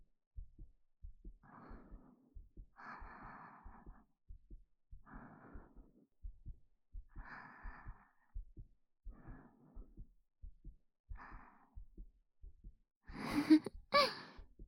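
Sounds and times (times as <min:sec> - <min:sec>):
human heartbeat thumping: 0:00.0 - 0:14.6
soft slow human breaths: 0:01.4 - 0:04.2, 0:05.0 - 0:06.1, 0:07.1 - 0:10.1, 0:11.1 - 0:12.0, 0:13.1 - 0:14.5.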